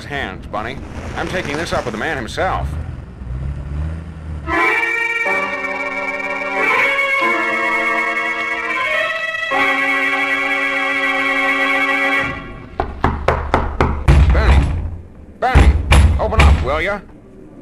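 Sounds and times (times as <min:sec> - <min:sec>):
speech: 0:00.0 - 0:02.8, 0:16.8 - 0:17.2
long sustained horn-like tone: 0:04.5 - 0:12.6
loud sharp knocks on a door: 0:12.8 - 0:15.0, 0:15.6 - 0:16.7.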